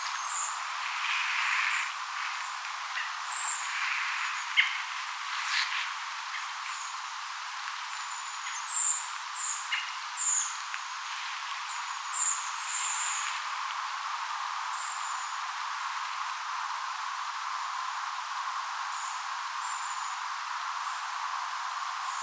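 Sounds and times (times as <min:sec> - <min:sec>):
redwing flock giving thin high tseep calls: 0:00.0 - 0:05.7
steady hiss: 0:00.0 - 0:22.2.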